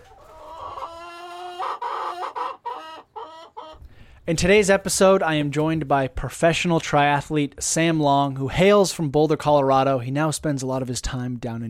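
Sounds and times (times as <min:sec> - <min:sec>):
household egg-laying chickens clucking and squawking: 0:00.0 - 0:04.2
speech: 0:04.2 - 0:11.6.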